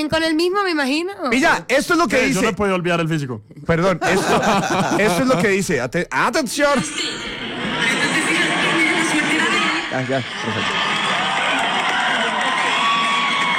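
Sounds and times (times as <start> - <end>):
speech: 0.0 - 7.2, 10.0 - 10.8
laughter: 3.9 - 5.8, 6.7 - 13.3
large crowd shouting and cheering in a played video: 6.9 - 13.5.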